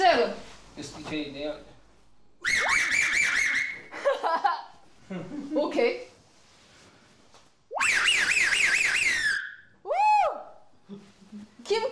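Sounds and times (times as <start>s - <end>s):
speech: 0.2s - 1.7s
loud high-pitched human whistle in a whistling contest: 2.4s - 3.9s, 7.7s - 10.4s
laughter: 3.9s - 5.6s.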